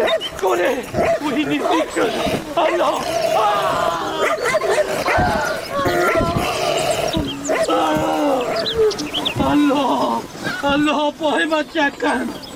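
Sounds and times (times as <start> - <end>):
dog barking aggressively with growling and yelping: 0.0 - 8.7
people's voices overlapping excitedly: 0.0 - 12.4
speech: 0.4 - 6.3, 10.6 - 12.4.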